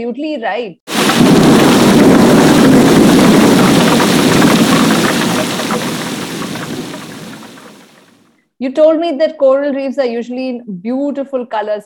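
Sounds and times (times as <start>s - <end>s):
speech: 0.0s - 0.8s, 8.6s - 11.8s
heavy rain hissing in a thunderstorm: 0.9s - 8.1s
deep rolling rumble of thunder: 0.9s - 8.2s.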